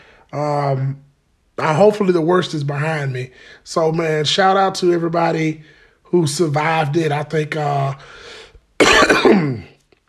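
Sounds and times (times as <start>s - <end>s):
speech: 0.3s - 9.7s
harsh rough cough from a person recovering from COVID-19: 8.8s - 9.8s.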